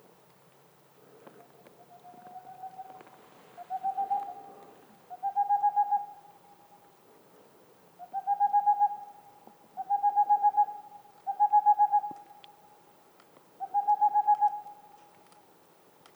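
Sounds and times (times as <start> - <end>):
male Boreal owl singing in the mountains near the Mediterranean: 1.8 - 6.8, 8.0 - 12.6, 13.6 - 15.0.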